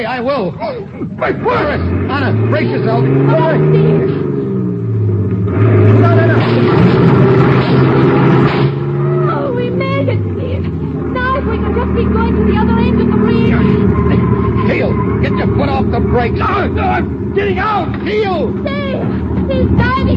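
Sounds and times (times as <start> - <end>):
speech: 0.0 - 4.2, 5.6 - 7.1, 15.4 - 20.1
heavy truck engine accelerating: 0.0 - 20.1
excited people shouting: 1.1 - 1.9, 8.8 - 10.2, 11.1 - 20.1.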